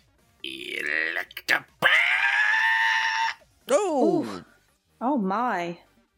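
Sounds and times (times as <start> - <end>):
speech: 0.4 - 1.8, 5.3 - 5.9
person screeching in imitation of a creature: 0.5 - 3.4.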